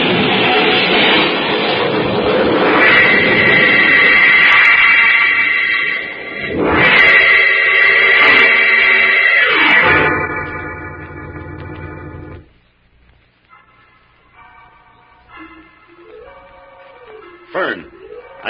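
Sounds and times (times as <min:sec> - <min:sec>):
car engine roaring: 0:00.0 - 0:12.5
car tire screeching skidding in the rain on a hill: 0:00.0 - 0:12.5.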